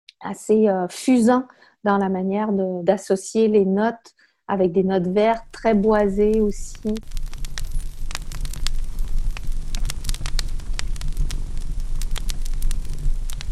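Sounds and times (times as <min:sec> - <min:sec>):
speech: 0:00.2 - 0:07.2
fireplace fire crackling with pops and snaps: 0:05.0 - 0:13.5.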